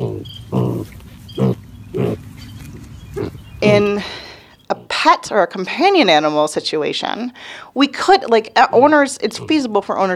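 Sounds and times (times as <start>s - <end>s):
five-week-old pigs grunting while rooting on a farm: 0.0s - 2.3s, 3.1s - 5.0s, 8.7s - 9.7s
low rustle: 0.0s - 5.8s
speech: 3.6s - 10.1s.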